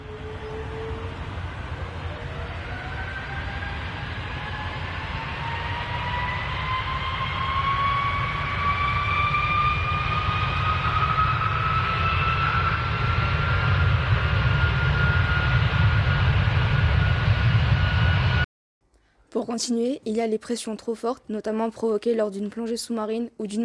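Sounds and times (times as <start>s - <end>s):
jet airplane taking off: 0.0s - 18.5s
speech: 19.4s - 23.6s.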